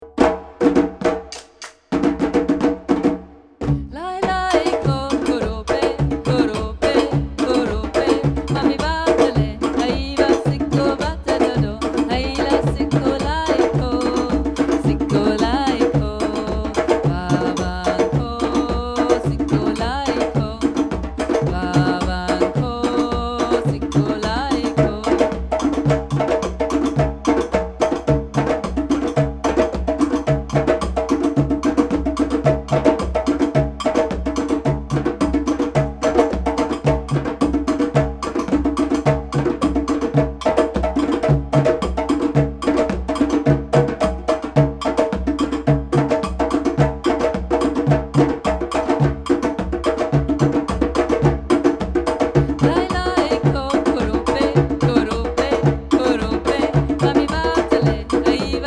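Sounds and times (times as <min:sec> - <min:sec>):
drums: 0:00.0 - 0:58.6.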